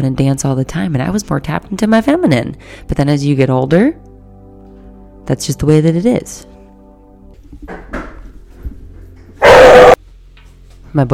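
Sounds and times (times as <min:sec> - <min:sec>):
speech: 0:00.0 - 0:04.1, 0:05.3 - 0:06.5, 0:10.9 - 0:11.1
dog barking: 0:09.4 - 0:10.0.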